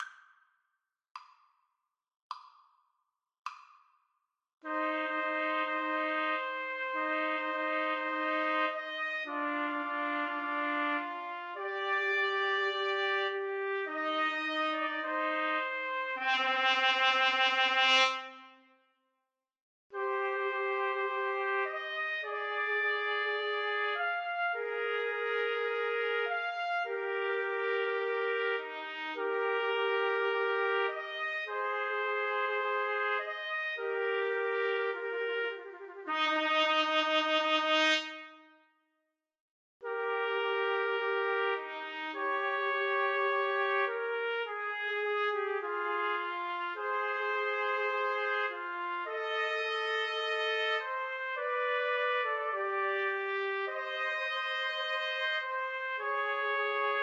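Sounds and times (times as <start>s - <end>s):
trumpet trio playing classical piece: 4.6s - 18.5s, 20.0s - 38.5s, 39.8s - 57.0s.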